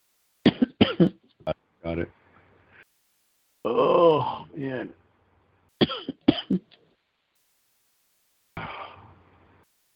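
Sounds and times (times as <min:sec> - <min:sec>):
sick person coughing: 0:00.5 - 0:01.2, 0:05.8 - 0:06.7
speech: 0:00.9 - 0:01.2, 0:03.7 - 0:05.0.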